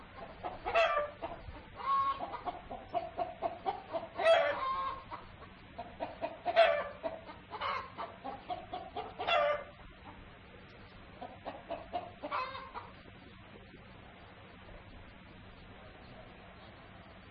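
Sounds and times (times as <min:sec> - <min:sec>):
low steady hum: 0:00.0 - 0:17.2
rooster short harmonic squawks: 0:00.2 - 0:09.8, 0:11.2 - 0:12.9.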